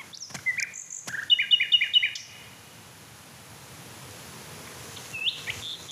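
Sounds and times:
male bird singing rapid repeated chirps: 0:00.0 - 0:02.5, 0:05.0 - 0:05.9
faint outdoor hiss: 0:00.0 - 0:05.9.

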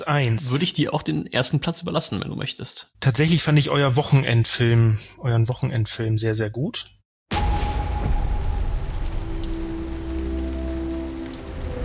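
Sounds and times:
speech: 0:00.0 - 0:07.0
low rumble: 0:07.3 - 0:11.8
steady rain: 0:07.4 - 0:11.8.

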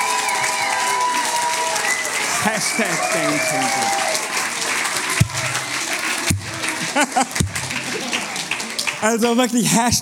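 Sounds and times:
people shouting: 0:00.0 - 0:07.0
crowd in a youth church clapping and cheering: 0:00.0 - 0:10.0
laughter: 0:01.2 - 0:10.0
speech: 0:02.4 - 0:04.2, 0:07.0 - 0:07.4, 0:09.0 - 0:10.0.

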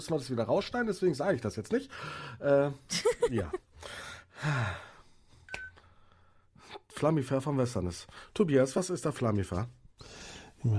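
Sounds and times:
speech: 0:00.0 - 0:04.9, 0:07.0 - 0:10.7
mobile phone beeping: 0:05.5 - 0:05.9.

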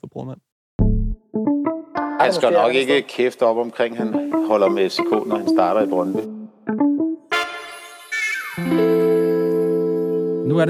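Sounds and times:
speech: 0:00.0 - 0:00.5, 0:01.3 - 0:06.8, 0:08.6 - 0:09.0
short electronic segment-separator jingle with synth blips and chord: 0:07.3 - 0:10.4.

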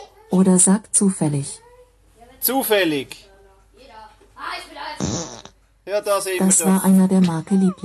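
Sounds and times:
speech: 0:00.3 - 0:01.6, 0:02.4 - 0:03.3, 0:05.9 - 0:07.8
fart sound effect played by a smart speaker: 0:05.0 - 0:05.6.

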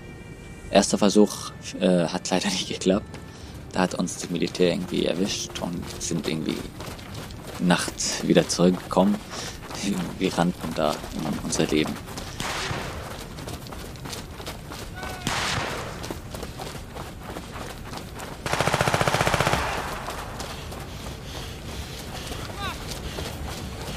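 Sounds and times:
speech: 0:00.7 - 0:07.0, 0:07.6 - 0:12.2
indistinct voices murmuring: 0:02.4 - 0:13.5, 0:14.8 - 0:15.3, 0:20.4 - 0:23.9
gunshots fired into the sky: 0:12.3 - 0:13.2, 0:15.2 - 0:16.1, 0:18.4 - 0:20.4.

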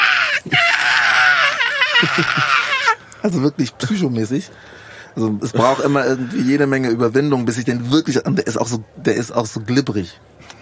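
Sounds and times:
voice imitating an animal screaming when locked in a kennel: 0:00.0 - 0:03.0
laughter: 0:00.4 - 0:03.0, 0:05.4 - 0:06.6
speech: 0:02.1 - 0:02.5, 0:03.2 - 0:10.6.

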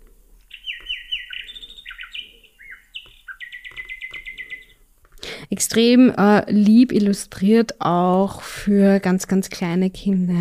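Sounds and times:
nightingale singing from a sound book: 0:00.4 - 0:04.9
speech: 0:05.6 - 0:10.3.

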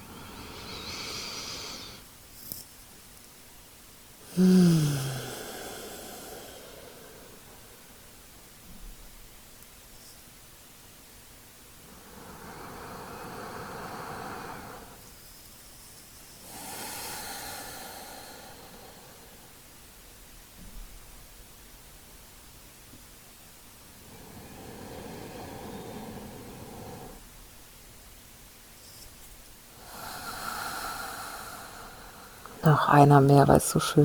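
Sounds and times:
slow deep breathing in and out: 0:00.0 - 0:02.1, 0:04.2 - 0:08.1, 0:11.9 - 0:15.0, 0:16.4 - 0:19.6, 0:24.0 - 0:27.3, 0:29.8 - 0:32.7
speech: 0:04.4 - 0:05.0, 0:32.6 - 0:34.0.

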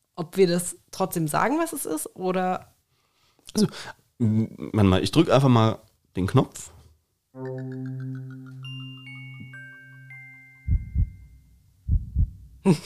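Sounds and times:
speech: 0:00.2 - 0:02.7, 0:03.5 - 0:06.8, 0:07.4 - 0:08.8, 0:12.6 - 0:12.8
sustained ringing chime-like tone: 0:07.4 - 0:11.7
heartbeat sound effect with deep double thumps: 0:10.7 - 0:11.2, 0:11.9 - 0:12.6.

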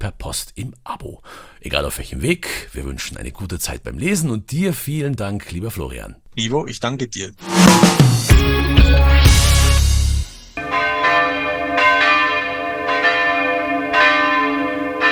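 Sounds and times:
speech: 0:00.0 - 0:09.2
hand-rung church bells pealing: 0:09.6 - 0:15.1.

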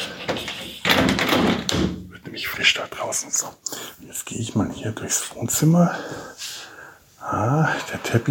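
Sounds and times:
door being pushed shut: 0:00.2 - 0:02.1
speech: 0:04.8 - 0:06.2, 0:07.3 - 0:08.3.

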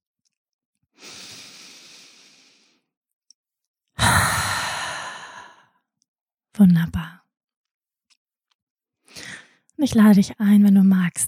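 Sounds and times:
deep breath in and out during a guided yoga relaxation exercise: 0:01.0 - 0:02.9, 0:04.0 - 0:05.7
speech: 0:06.6 - 0:07.2, 0:09.8 - 0:11.2.

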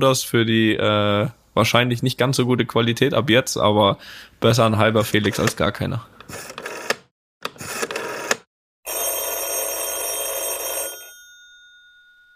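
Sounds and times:
speech: 0:00.0 - 0:06.5
mobile phone call ringing tone: 0:06.3 - 0:07.0, 0:07.6 - 0:12.3.

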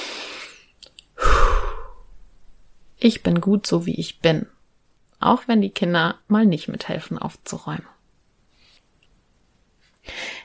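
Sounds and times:
deep breathy exhales of calming breaths: 0:01.2 - 0:02.3, 0:10.0 - 0:10.4
speech: 0:03.0 - 0:04.6, 0:05.2 - 0:08.0.

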